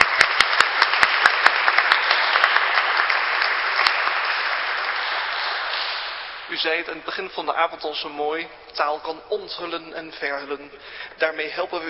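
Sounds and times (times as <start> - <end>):
sharp individual claps: 0.0 - 6.4
audience applauding: 0.0 - 6.6
speech: 6.6 - 11.8.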